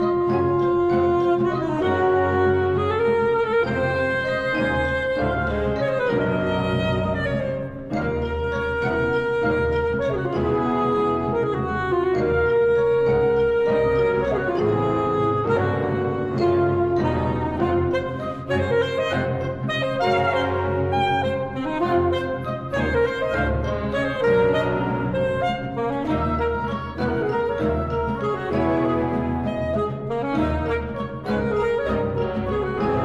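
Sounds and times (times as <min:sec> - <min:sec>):
alto saxophone: 0:00.0 - 0:33.0
orchestra playing: 0:00.0 - 0:33.0.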